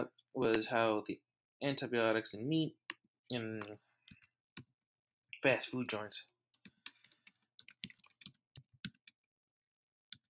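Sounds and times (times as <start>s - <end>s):
speech: 0.4s - 3.8s, 5.4s - 6.3s
typing on a computer keyboard: 6.6s - 9.3s.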